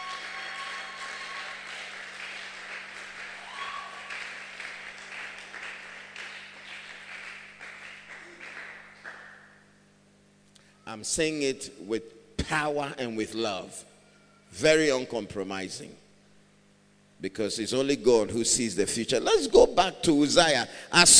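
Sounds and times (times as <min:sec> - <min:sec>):
audience clapping: 0:00.0 - 0:09.6
speech: 0:10.9 - 0:13.9, 0:14.5 - 0:16.0, 0:17.2 - 0:21.1.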